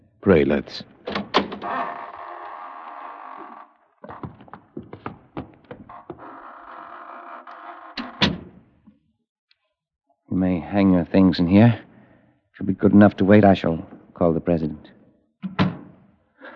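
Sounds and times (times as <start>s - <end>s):
speech: 0.2s - 0.9s, 10.7s - 11.8s, 12.6s - 15.0s
door creaking open: 1.0s - 8.7s
knocks and rattles: 4.0s - 6.3s.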